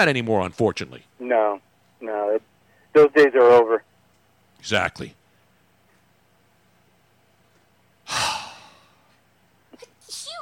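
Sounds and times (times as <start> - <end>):
speech: 0.0 - 3.9, 4.6 - 5.2
person sneezing: 8.1 - 8.8.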